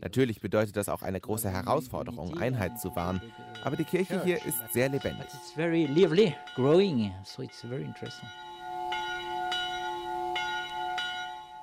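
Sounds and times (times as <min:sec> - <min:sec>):
speech: 0:00.0 - 0:08.5
monastery church bells ringing: 0:02.4 - 0:11.6.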